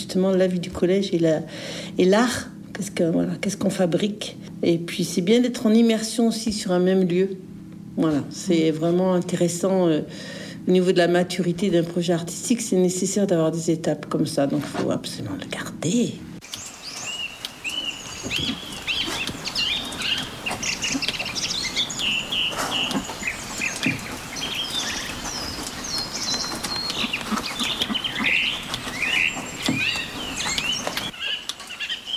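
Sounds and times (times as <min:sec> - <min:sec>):
speech: 0:00.1 - 0:16.3, 0:18.2 - 0:18.7
steady outdoor hush: 0:15.5 - 0:32.1
thrushes singing in open countryside: 0:16.4 - 0:32.1.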